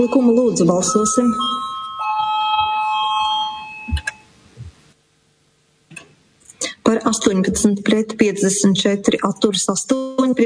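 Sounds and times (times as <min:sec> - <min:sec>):
speech: 0:00.0 - 0:01.6, 0:07.2 - 0:10.4
parliament electric voting bell ringing before a vote: 0:00.0 - 0:04.4.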